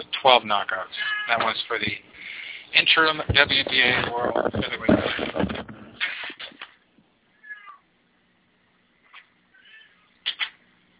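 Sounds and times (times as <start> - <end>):
speech: 0.2 - 5.6
rustling thumps: 2.8 - 6.7
cat meowing while being let outside: 7.4 - 7.9, 9.5 - 10.1.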